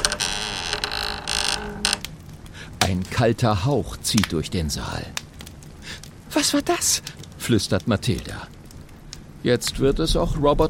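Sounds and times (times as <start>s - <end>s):
door creaking open in a spooky hall: 0.0s - 2.2s
speech: 2.9s - 5.2s, 6.4s - 8.6s, 9.4s - 10.6s.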